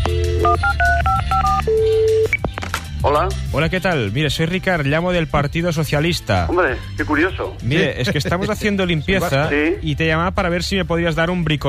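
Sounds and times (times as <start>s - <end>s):
telephone touch tone dialing beeps: 0.0s - 2.4s
speech: 3.0s - 11.6s.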